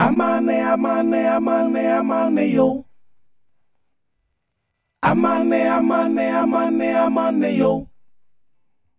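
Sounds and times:
vocal ensemble singing: 0:00.0 - 0:02.9, 0:05.0 - 0:07.9.

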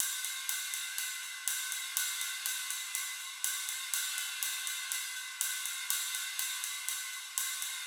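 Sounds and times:
wet ride cymbal: 0:00.0 - 0:07.8.

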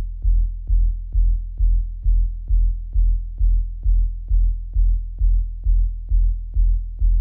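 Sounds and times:
dark analog bass: 0:00.0 - 0:07.1.

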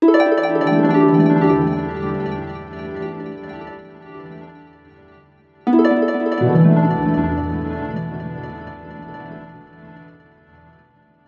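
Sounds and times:
harp loop in Em 85: 0:00.0 - 0:03.4, 0:05.7 - 0:09.8.

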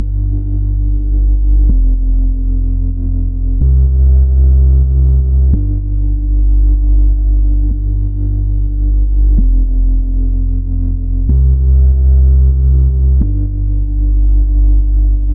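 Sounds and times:
decimated bass in G at 125 BPM: 0:00.0 - 0:15.3.

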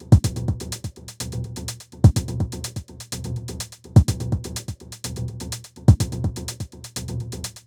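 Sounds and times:
top drum loop at 125bpm: 0:00.1 - 0:02.8, 0:04.0 - 0:04.8, 0:05.9 - 0:06.7.

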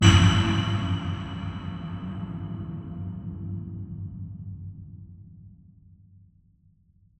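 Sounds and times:
cinematic metal music: 0:00.0 - 0:03.3.

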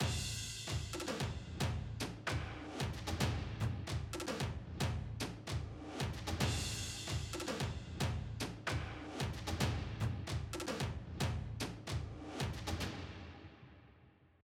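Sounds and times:
orchestral drum break: 0:00.0 - 0:13.4.

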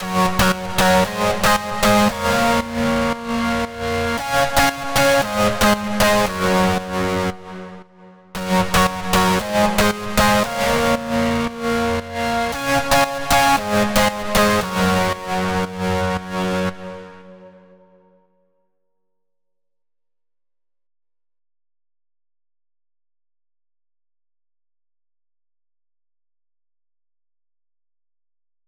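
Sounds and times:
lead synth in F minor: 0:00.0 - 0:07.6, 0:08.4 - 0:17.8.

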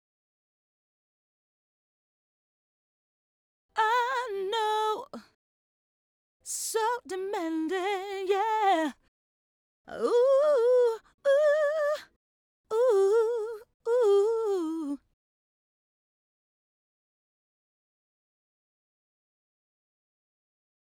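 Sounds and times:
woman singing ad-libs in G major and D major: 0:03.8 - 0:05.4, 0:06.4 - 0:09.1, 0:09.9 - 0:15.2.

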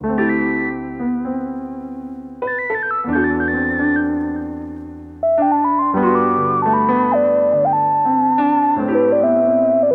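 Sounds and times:
acoustic piano synth lead loop in E minor: 0:00.0 - 0:09.9.

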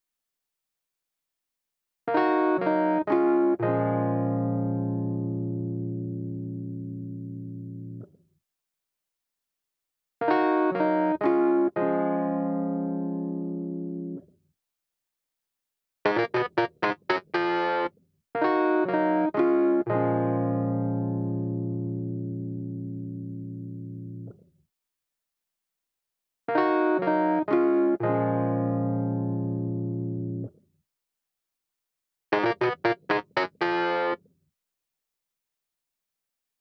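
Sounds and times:
distorted Rhodes: 0:02.1 - 0:08.0, 0:10.3 - 0:14.2, 0:16.1 - 0:24.3, 0:26.5 - 0:30.5, 0:32.3 - 0:34.2.

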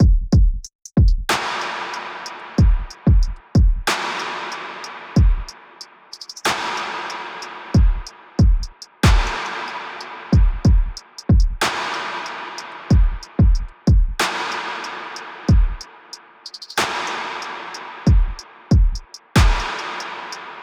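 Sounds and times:
drum loop: 0:00.0 - 0:01.3, 0:02.6 - 0:03.9, 0:07.8 - 0:09.4, 0:10.3 - 0:11.6, 0:12.9 - 0:14.2, 0:18.1 - 0:19.8.

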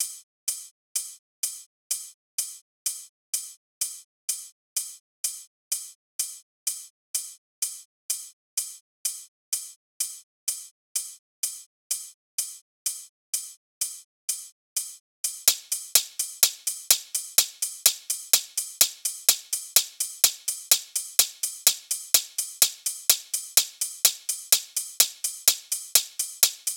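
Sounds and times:
drums at 126 bpm: 0:15.2 - 0:26.7.

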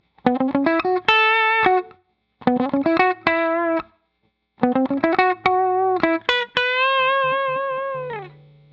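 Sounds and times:
dry funk guitar loop in A: 0:00.2 - 0:03.9, 0:04.6 - 0:08.7.

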